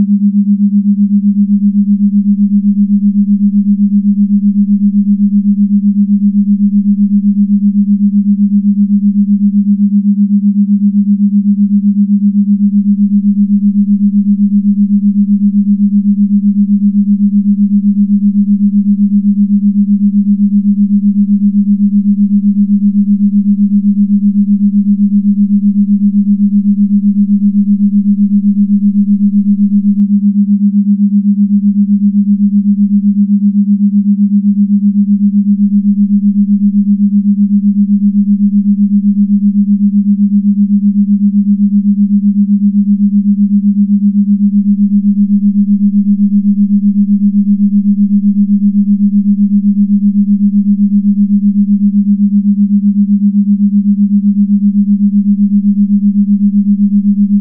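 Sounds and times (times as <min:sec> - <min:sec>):
Schumann resonance 7.83 Hz tone: 0:00.0 - 0:57.3.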